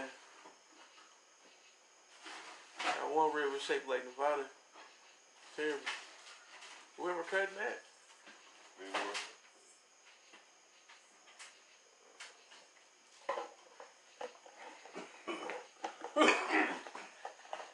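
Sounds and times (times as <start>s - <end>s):
faint clatter: 0.0s - 17.7s
speech: 3.2s - 4.6s, 5.6s - 6.0s, 7.0s - 7.9s, 8.8s - 9.3s
man coughing: 15.2s - 17.0s.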